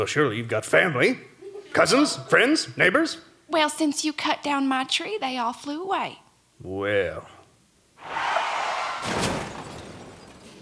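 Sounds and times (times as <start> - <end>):
speech: 0.0 - 7.4
sleigh crashing into the side of an outhouse: 8.0 - 10.6
rattling clatter of debris: 9.0 - 10.6.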